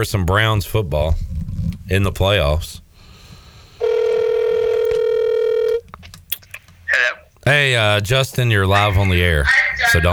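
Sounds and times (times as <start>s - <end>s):
speech: 0.0s - 2.8s, 7.5s - 10.1s
faint noise: 0.0s - 10.1s
phone line ringing out with a steady electronic tone: 3.8s - 5.8s.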